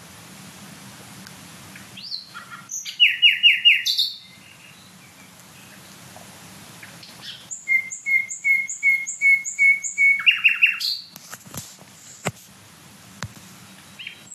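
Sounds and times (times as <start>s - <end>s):
Common Nightingale singing at night in dense woodland thickets: 1.7s - 6.1s, 6.8s - 11.2s, 13.6s - 14.3s.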